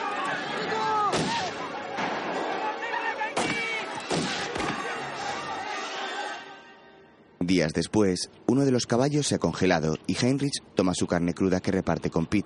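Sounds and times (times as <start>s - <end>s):
dense continuous background: 0.0s - 12.4s
gunshots as riders flee on stolen horses: 1.1s - 2.6s, 3.3s - 4.9s
speech: 7.5s - 12.4s.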